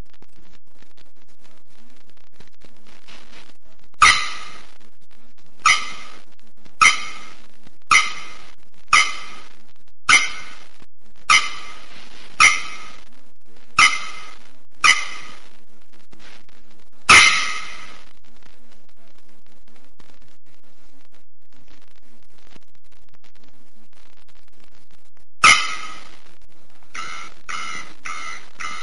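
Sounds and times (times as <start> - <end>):
bearded bellbird clanging calls: 4.0 - 4.6, 5.7 - 6.2, 6.8 - 8.4, 9.0 - 9.5, 10.1 - 10.6, 11.3 - 13.0, 13.8 - 15.4, 17.1 - 17.9, 25.5 - 26.0, 27.0 - 28.8.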